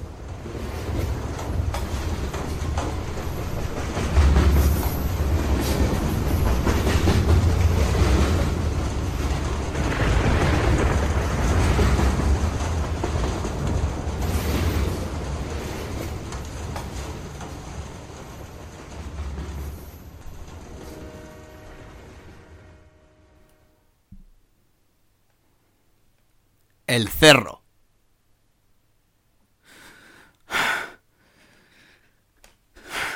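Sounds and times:
train moving on rails: 0:00.0 - 0:23.8
speech: 0:26.9 - 0:27.6.

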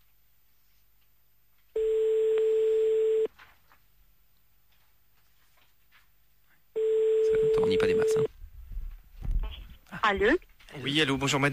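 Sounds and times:
telephone ringback tone while placing a call: 0:01.8 - 0:03.3, 0:06.8 - 0:08.3
speech: 0:10.1 - 0:11.5.

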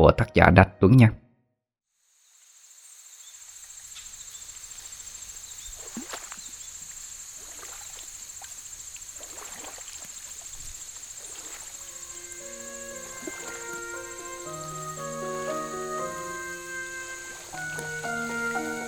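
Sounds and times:
speech: 0:00.0 - 0:01.2
crickets chirring at night: 0:02.0 - 0:18.8
oar splashes on a river: 0:05.5 - 0:18.8
creaking oars of a rowing boat on a river at night: 0:11.3 - 0:18.8.

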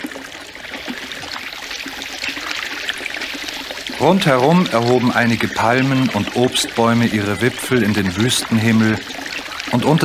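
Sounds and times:
clear spring water splashing in the desert: 0:00.0 - 0:10.0
speech: 0:04.0 - 0:10.0.

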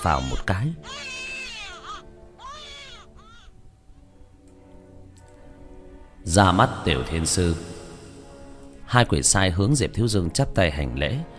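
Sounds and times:
speech: 0:00.0 - 0:01.1, 0:06.2 - 0:07.8, 0:08.9 - 0:11.3
newborn baby crying from an operating room: 0:00.0 - 0:03.6.

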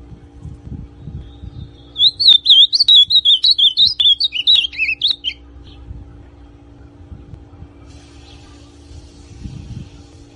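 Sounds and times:
faint low rumble: 0:00.0 - 0:10.3
Ultramarine grosbeak singing warbling whistled notes in classic song style: 0:01.2 - 0:05.8.

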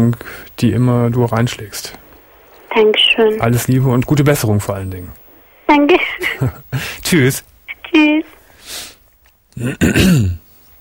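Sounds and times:
speech: 0:00.0 - 0:02.0, 0:02.8 - 0:08.9, 0:09.6 - 0:10.4
throat-clearing cough: 0:09.6 - 0:10.4.

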